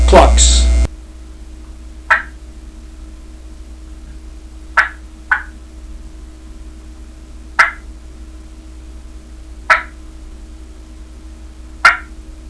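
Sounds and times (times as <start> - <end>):
turkey clucks: 2.1 - 2.4, 4.8 - 5.6, 7.6 - 7.9, 9.7 - 10.0, 11.8 - 12.1.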